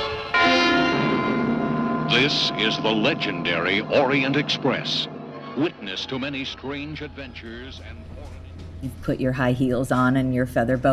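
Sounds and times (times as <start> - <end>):
steam train rumble: 0.0 - 10.9
speech: 2.2 - 10.9.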